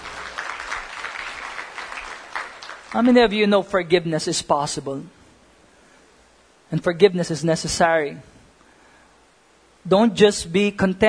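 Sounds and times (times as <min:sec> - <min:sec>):
congregation clapping along in a steady beat: 0:00.0 - 0:03.5
speech: 0:02.9 - 0:05.2, 0:06.7 - 0:08.3, 0:09.8 - 0:11.0.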